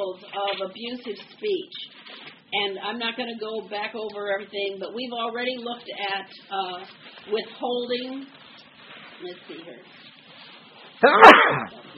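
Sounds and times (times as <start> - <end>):
speech: 0.1 - 8.4, 9.2 - 10.1, 11.0 - 11.9
person sneezing: 11.0 - 11.8.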